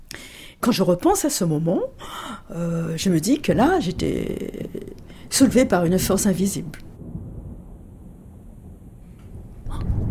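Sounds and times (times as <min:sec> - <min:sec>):
speech: 0:00.6 - 0:06.9
distant thunder rumble: 0:02.0 - 0:10.0.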